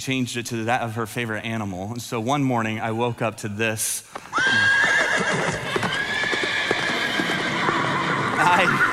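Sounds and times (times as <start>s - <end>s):
speech: 0.0s - 5.5s
horse hooves clip-clopping: 4.1s - 8.9s
horse neighing and whinnying: 4.3s - 8.9s.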